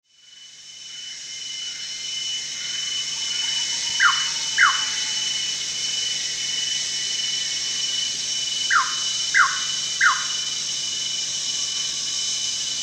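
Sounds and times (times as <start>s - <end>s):
steady high hiss: 0.2s - 12.8s
greater racket-tailed drongo downslurred calls at Danum: 4.0s - 5.0s, 8.7s - 10.4s.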